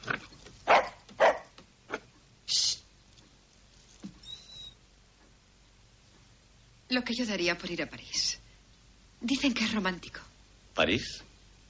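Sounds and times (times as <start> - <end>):
dog barking: 0.6 - 2.0
dog whining: 4.2 - 4.8
speech: 6.9 - 8.4, 9.2 - 11.3.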